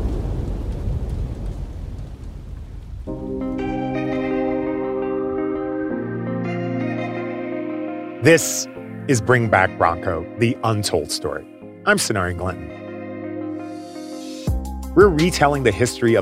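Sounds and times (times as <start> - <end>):
low thunder rumble: 0.0 - 3.5
steady rain: 0.0 - 3.7
sustained musical chords: 3.1 - 16.2
speech: 8.2 - 12.8, 15.0 - 16.2.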